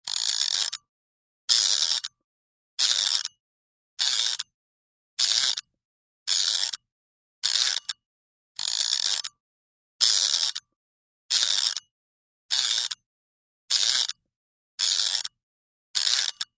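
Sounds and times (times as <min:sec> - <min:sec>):
clock spring being wound: 0:00.1 - 0:00.8, 0:01.5 - 0:02.2, 0:02.8 - 0:03.4, 0:04.0 - 0:04.5, 0:05.2 - 0:05.7, 0:06.3 - 0:06.8, 0:07.4 - 0:08.0, 0:08.6 - 0:09.4, 0:10.0 - 0:10.7, 0:11.3 - 0:11.9, 0:12.5 - 0:13.0, 0:13.7 - 0:14.2, 0:14.8 - 0:15.4, 0:16.0 - 0:16.5.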